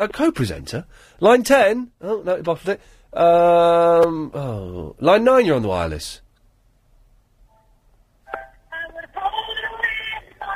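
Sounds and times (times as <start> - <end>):
speech: 0.0 - 6.2
thin tinny audio played down a telephone line: 7.4 - 10.5.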